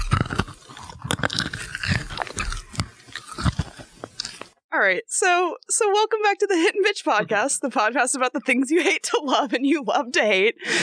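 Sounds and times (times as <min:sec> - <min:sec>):
chewing and crunching small hard Pez candy: 0:00.0 - 0:04.6
speech: 0:04.8 - 0:10.8.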